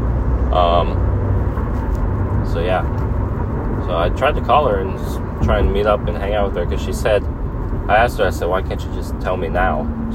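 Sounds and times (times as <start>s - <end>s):
road traffic rumbling: 0.0s - 10.1s
speech: 0.5s - 1.0s, 2.5s - 3.1s, 3.9s - 10.1s.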